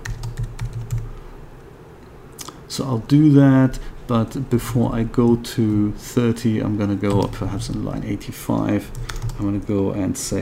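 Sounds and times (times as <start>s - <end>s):
typing on a computer keyboard: 0.0s - 1.1s, 7.1s - 7.5s, 8.9s - 9.5s
soft hum: 0.0s - 10.3s
speech: 2.8s - 10.3s.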